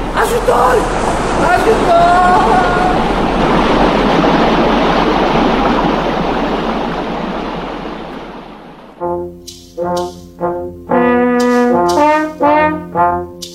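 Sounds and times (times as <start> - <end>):
stream water rushing: 0.0 - 10.5
speech: 0.3 - 3.0
short tonal musical bursts: 9.0 - 13.5.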